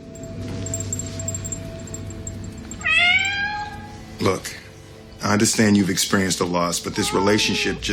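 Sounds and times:
steady low hum: 0.0s - 7.4s
cat meowing: 2.8s - 4.0s, 6.8s - 7.9s
speech: 4.2s - 4.6s, 5.2s - 7.9s.

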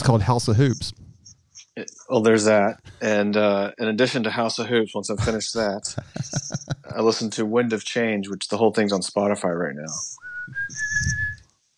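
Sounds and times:
speech: 0.0s - 1.0s, 1.8s - 11.2s
laughter: 5.2s - 7.3s
person whistling a sustained note: 10.2s - 11.4s.

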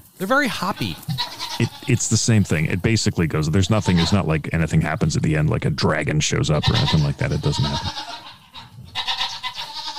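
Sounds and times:
speech: 0.2s - 8.3s
goats in pajamas bleating: 0.6s - 2.3s, 3.4s - 4.4s, 6.3s - 9.9s.

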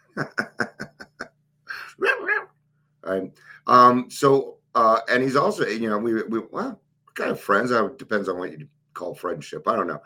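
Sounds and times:
laughter: 0.0s - 1.4s
pet dog yelping: 2.0s - 2.6s
speech: 3.1s - 10.0s.

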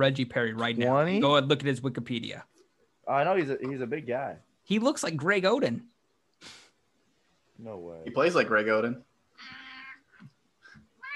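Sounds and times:
speech: 0.0s - 2.5s, 3.1s - 6.6s, 7.6s - 9.6s
cat meowing: 9.4s - 10.3s.

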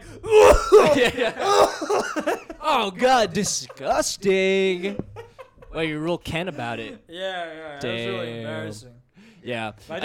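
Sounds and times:
person with a dry throat doing an exaggerated deep dad-style cough: 0.0s - 2.4s
speech: 0.3s - 5.1s, 5.8s - 10.0s
laughter: 0.3s - 7.8s.

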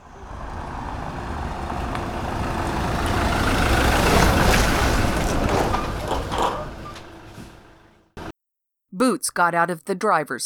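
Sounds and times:
pickup truck rumbling in and parking in a yard: 0.0s - 8.3s
pickup truck creaks and clunks as it settles: 1.6s - 8.3s
speech: 9.0s - 10.4s.

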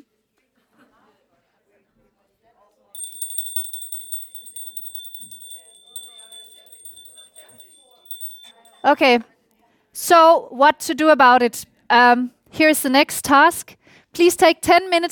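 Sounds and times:
hand bell ringing to end a group discussion: 3.0s - 9.0s
speech: 8.8s - 9.3s, 10.0s - 15.1s.

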